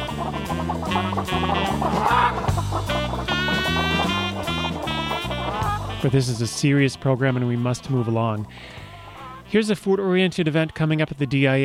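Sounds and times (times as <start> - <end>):
rubber chicken squawking: 0.0 - 6.7, 7.3 - 9.6
steady bouncy musical backing: 0.0 - 10.5
speech: 6.0 - 8.8, 9.5 - 11.6.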